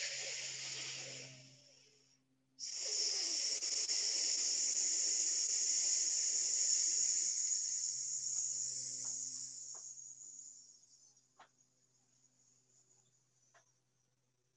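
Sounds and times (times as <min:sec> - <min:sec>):
long exhaled hiss on an S sound: 0:00.0 - 0:10.9.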